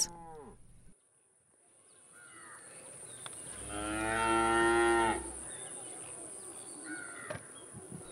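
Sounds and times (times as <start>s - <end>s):
cow mooing: 3.6s - 5.4s.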